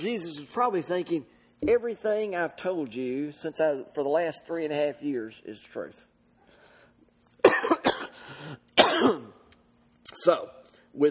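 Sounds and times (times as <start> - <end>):
speech: 0.0 - 6.1, 10.2 - 11.1
person coughing: 7.4 - 8.2, 8.8 - 9.4
low rumbling throat clear: 8.8 - 9.4.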